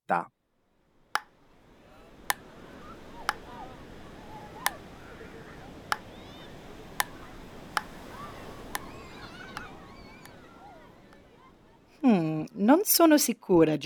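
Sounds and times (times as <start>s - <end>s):
speech: 0.1s - 0.4s, 12.0s - 13.8s
continuous hiss of seaside ambience: 0.6s - 13.6s
faint voices: 0.9s - 12.5s
beach paddleball ball hitting wooden paddles: 2.2s - 4.0s, 4.6s - 5.0s, 5.7s - 11.3s.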